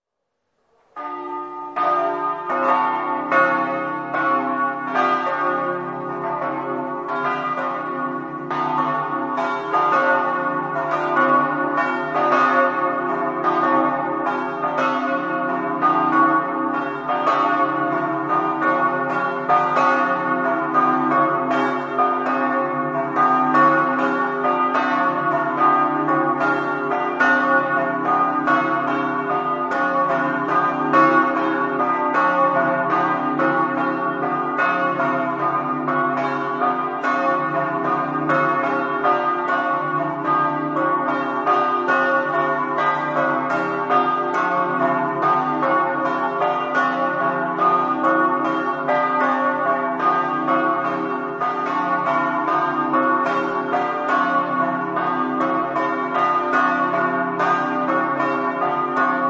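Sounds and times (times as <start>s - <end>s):
bells ringing: 1.0s - 59.2s.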